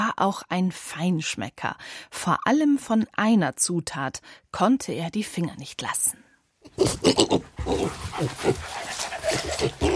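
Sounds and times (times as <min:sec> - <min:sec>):
speech: 0:00.2 - 0:09.9
pig or dog tracking truffles sniffing and grunting: 0:06.7 - 0:09.9.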